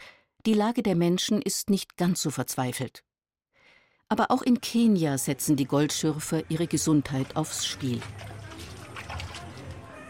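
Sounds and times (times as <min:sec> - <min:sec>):
speech: 0:00.4 - 0:03.1, 0:04.1 - 0:08.4
hand stirring muddy water in a metal bowl: 0:06.6 - 0:10.0.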